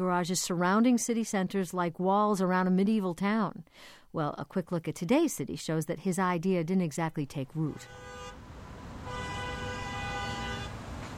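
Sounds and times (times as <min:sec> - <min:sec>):
speech: 0:00.0 - 0:08.4
steady rumble of city traffic: 0:07.3 - 0:11.1
car horn blast: 0:07.8 - 0:08.4, 0:09.0 - 0:10.9.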